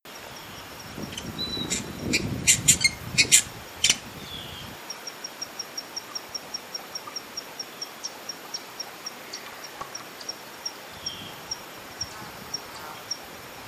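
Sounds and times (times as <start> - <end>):
hyacinth visorbearer calling: 0.4 - 13.6.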